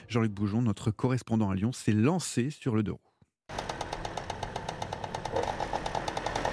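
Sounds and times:
speech: 0.1 - 3.6
two-stroke moped engine running in a repair workshop in Lyon: 3.5 - 6.5.

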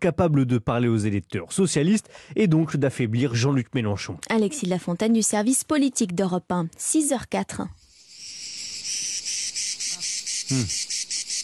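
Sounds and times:
speech: 0.0 - 7.8, 10.5 - 10.9
cicadas buzzing in a pine forest at the Calanque de Sugiton: 7.8 - 11.4
low bird-like chirps: 7.8 - 11.4.

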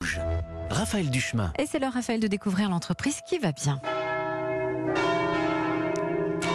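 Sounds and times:
speech: 0.7 - 4.0
church bells made by the Paccard foundry ringing: 2.5 - 6.5.

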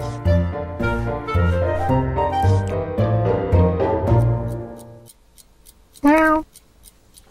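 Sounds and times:
light cartoon music: 0.0 - 5.2
cartoon cat meowing loudly: 6.0 - 6.5.

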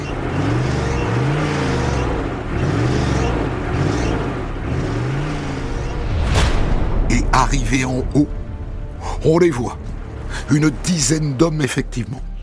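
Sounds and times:
lead vehicle engine accelerating uphill: 0.0 - 6.6
speech: 7.4 - 8.4, 9.2 - 9.8, 10.4 - 12.3.

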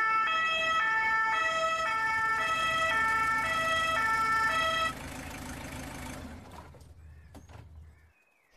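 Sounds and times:
two-tone siren of an arriving emergency ambulance: 0.0 - 6.7
ambulance engine rumble: 1.0 - 8.4.

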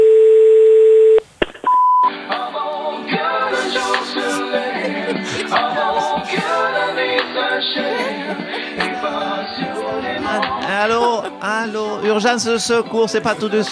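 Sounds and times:
telephone dial tone on an outgoing call to an emergency line: 0.0 - 1.9
laughter: 3.2 - 13.7
speech: 12.2 - 13.7.

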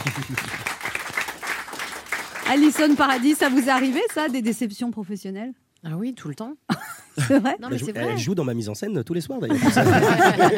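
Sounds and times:
laughter: 0.0 - 0.6, 6.7 - 8.2, 9.4 - 10.5
speech: 0.0 - 0.7, 2.5 - 10.5
audience applause at a live event: 0.0 - 4.4.

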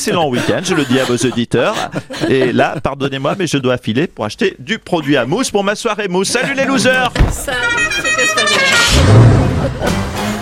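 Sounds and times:
laughter: 0.0 - 3.5, 6.2 - 10.3
speech: 0.0 - 10.1
musical car horn playing a tune: 7.5 - 9.4.

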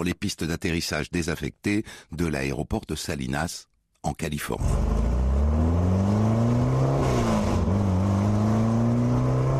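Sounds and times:
speech: 0.0 - 5.2
Porsche 550 Spider sports car engine revving: 4.6 - 9.5.

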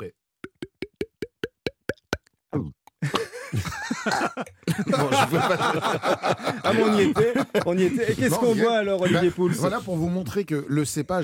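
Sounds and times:
voice imitating a bottle being uncorked with mouth pops: 0.4 - 3.3
chuckling: 3.0 - 8.2
speech: 4.0 - 11.2.

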